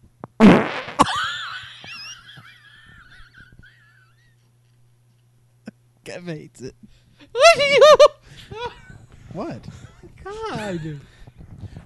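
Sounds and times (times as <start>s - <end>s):
loud fart with sputtering burst and wavering squeak: 0.4s - 1.2s
speech: 6.2s - 8.7s, 9.4s - 11.2s.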